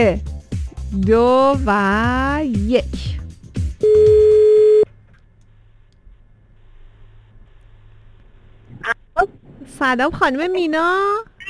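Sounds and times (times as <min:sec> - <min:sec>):
speech: 0:00.0 - 0:00.3, 0:00.9 - 0:03.2, 0:09.2 - 0:11.3
telephone ringing tone: 0:03.8 - 0:04.9.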